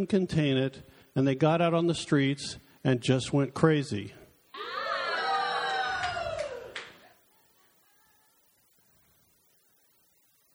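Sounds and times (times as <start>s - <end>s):
speech: 0.0s - 4.8s
audience yelling and cheering: 4.6s - 7.1s.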